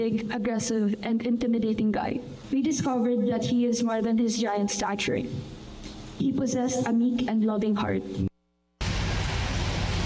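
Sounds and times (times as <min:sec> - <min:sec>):
speech: 0:00.0 - 0:05.6, 0:06.2 - 0:08.3
heavy rain pouring: 0:08.8 - 0:10.0.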